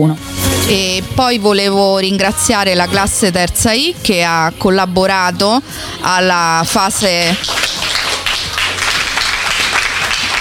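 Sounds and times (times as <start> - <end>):
speech: 0.0 - 7.7
applause at a school event: 7.1 - 10.3.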